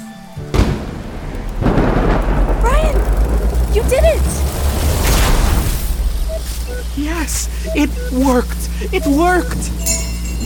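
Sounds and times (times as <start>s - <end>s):
sharp crack of a lightning strike: 0.4s - 7.0s
deep rolling rumble of thunder: 0.4s - 7.8s
speech: 7.0s - 10.4s.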